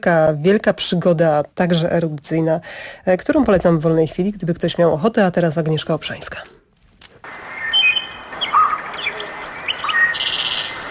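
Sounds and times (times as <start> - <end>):
speech: 0.0 - 6.6
birds singing at dawn: 7.3 - 10.8.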